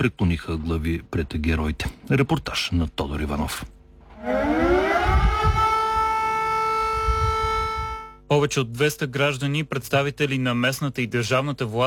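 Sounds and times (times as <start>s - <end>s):
speech: 0.0s - 5.6s, 8.3s - 11.8s
faint low rumbling: 0.0s - 11.6s
civil defense siren winding up: 4.2s - 8.2s.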